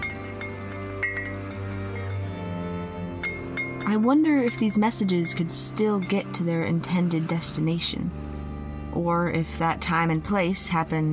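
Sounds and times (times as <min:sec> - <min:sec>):
hanging glass bottles chiming together: 0:00.0 - 0:06.7
speech: 0:03.9 - 0:08.3, 0:09.0 - 0:11.1.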